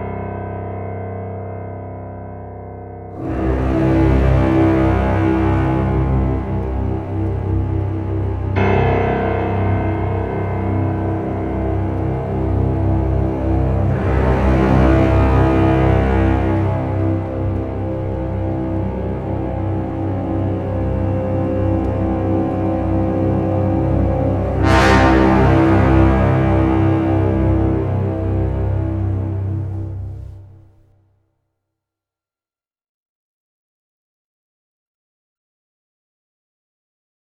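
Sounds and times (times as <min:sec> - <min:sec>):
orchestra drone without percussion: 0:03.2 - 0:30.7.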